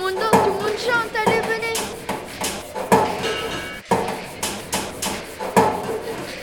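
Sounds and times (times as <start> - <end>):
noisy party background: 0.0 - 6.4
pots and pans struck with forks at a party: 0.1 - 6.4.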